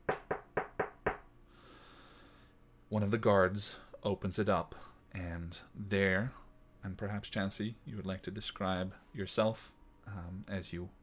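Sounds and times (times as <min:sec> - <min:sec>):
knocking on a door: 0:00.0 - 0:01.3
speech: 0:02.9 - 0:11.0.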